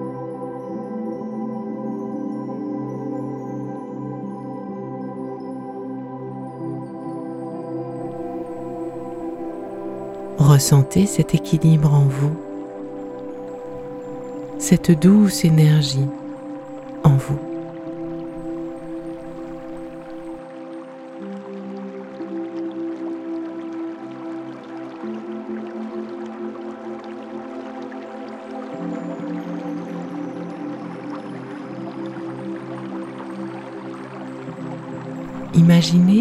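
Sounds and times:
gentle stream burbling and trickling: 0:08.0 - 0:36.1
speech: 0:10.6 - 0:12.5, 0:14.7 - 0:16.2, 0:17.0 - 0:17.5, 0:35.8 - 0:36.1.

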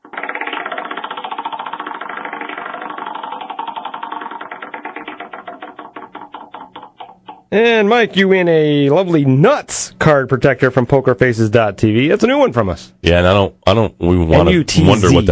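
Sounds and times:
prize wheel spinning with ratcheting clicks: 0:00.0 - 0:07.5
speech: 0:07.5 - 0:15.3.

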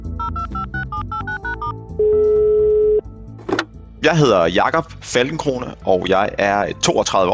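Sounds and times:
telephone dialing beeps: 0:00.2 - 0:03.0
speech: 0:04.0 - 0:07.3.

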